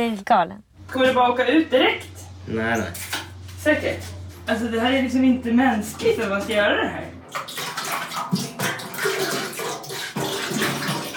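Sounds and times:
speech: 0.0 - 7.4
green water pouring out in a gushing stream: 7.3 - 11.1.

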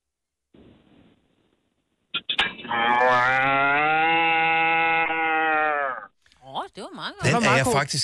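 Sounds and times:
speech: 2.7 - 3.5, 7.0 - 8.0
person imitating a cow mooing: 2.7 - 6.1.

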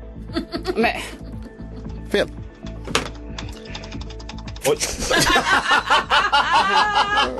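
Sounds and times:
speech: 0.3 - 1.2, 2.1 - 3.0, 4.6 - 7.3
rapid forceful keyboard typing with hard clacking keystrokes: 2.6 - 4.8
laughter: 4.8 - 7.3.

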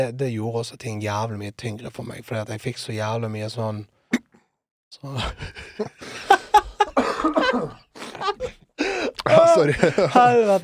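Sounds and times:
speech: 0.0 - 4.2, 4.9 - 6.4, 7.3 - 8.4, 9.3 - 10.6
laughter: 5.2 - 10.6
stifled cough: 6.9 - 8.6.

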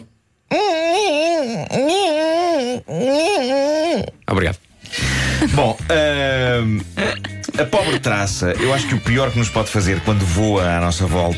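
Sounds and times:
person vocally imitating a mosquito opening a creaking door: 0.5 - 4.2
speech: 1.4 - 4.6, 5.6 - 11.3.

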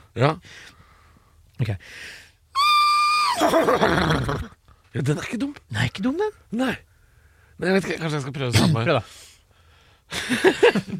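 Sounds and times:
speech: 0.2 - 0.8, 1.6 - 2.2, 3.4 - 6.9, 7.6 - 9.3, 10.1 - 10.9
person imitating a horse neighing: 2.6 - 4.6.

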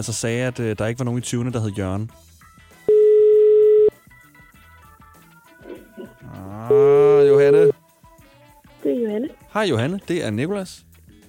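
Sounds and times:
speech: 0.0 - 2.3, 6.7 - 7.8, 8.8 - 10.9
quiet music with a soft rhythmic beat: 0.0 - 11.2
telephone ringing tone while calling: 2.9 - 3.9, 6.6 - 7.8.

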